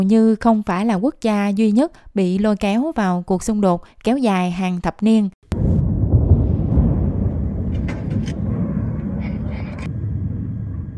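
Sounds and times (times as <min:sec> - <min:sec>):
speech: 0:00.0 - 0:05.4
airstrike explosions rumbling: 0:05.5 - 0:10.9.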